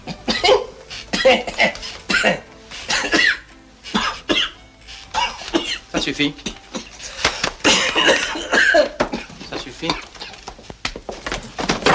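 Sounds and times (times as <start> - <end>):
person coughing harshly: 0.2 - 4.5, 5.2 - 6.9, 7.6 - 10.4
speech: 1.3 - 2.4, 6.1 - 6.6.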